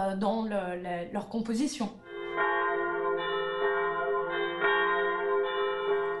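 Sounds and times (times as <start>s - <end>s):
speech: 0.0s - 2.6s
church bells ringing: 2.0s - 6.1s.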